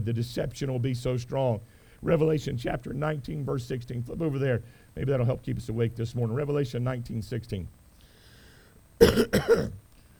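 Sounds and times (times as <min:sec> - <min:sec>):
speech: 0:00.0 - 0:07.8, 0:09.0 - 0:09.8
person coughing harshly into a microphone: 0:09.0 - 0:09.8.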